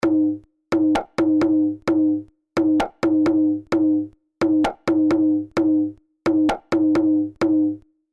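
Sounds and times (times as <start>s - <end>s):
Cambodian skor dai hand drum: 0.0s - 7.8s.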